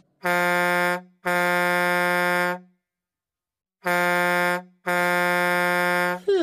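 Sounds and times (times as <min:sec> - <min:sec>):
truck air horn honking: 0:00.1 - 0:02.8, 0:03.8 - 0:06.3.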